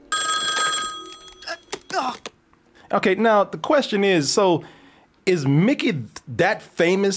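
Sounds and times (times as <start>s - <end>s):
loud telephone bell ringing in a movie scene: 0.0s - 1.9s
speech: 2.9s - 7.1s.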